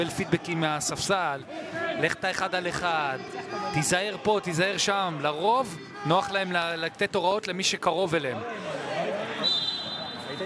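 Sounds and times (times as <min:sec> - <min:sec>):
speech: 0:00.0 - 0:08.8
referee whistle blown for a foul: 0:09.4 - 0:10.4.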